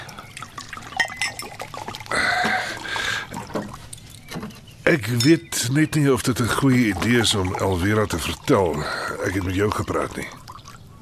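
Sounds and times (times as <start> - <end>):
wine pouring into a glass: 0.0 - 4.1, 6.4 - 10.8
glass clinks: 0.8 - 2.6
speech: 4.9 - 10.4.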